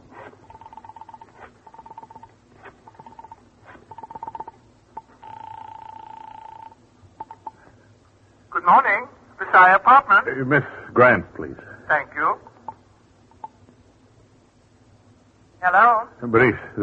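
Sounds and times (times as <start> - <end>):
telephone dialing beeps: 0.4 - 2.3, 2.9 - 7.6
speech: 8.7 - 12.4, 16.2 - 16.8.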